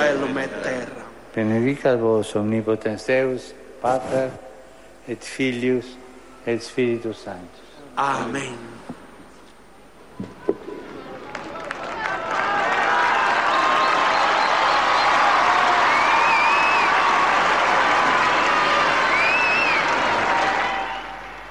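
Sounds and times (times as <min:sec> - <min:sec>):
speech: 0:00.2 - 0:09.0
large crowd applauding and cheering: 0:10.8 - 0:21.4
whistles from crowd: 0:13.0 - 0:17.1, 0:19.0 - 0:21.4.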